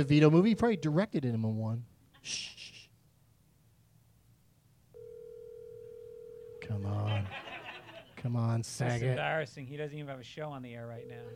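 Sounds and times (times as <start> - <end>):
outgoing phone call electronic ringing tone: 0.0 - 1.0, 5.0 - 6.8, 11.0 - 11.3
speech: 0.0 - 2.8, 6.7 - 7.5, 8.2 - 11.3
laughter: 6.9 - 8.2.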